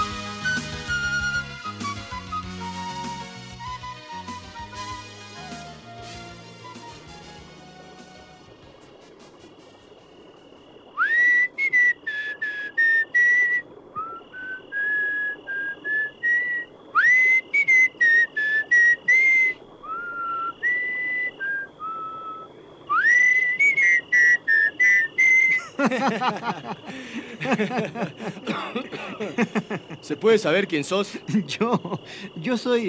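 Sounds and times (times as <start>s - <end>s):
person whistling a lively bouncing melody: 0.0s - 6.0s, 11.0s - 25.7s
laughter: 25.5s - 30.2s, 31.1s - 32.2s
speech: 25.9s - 32.8s.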